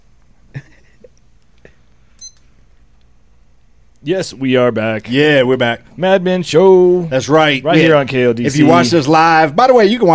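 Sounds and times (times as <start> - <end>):
short high electronic beep: 2.2 - 2.4
speech: 4.0 - 10.1.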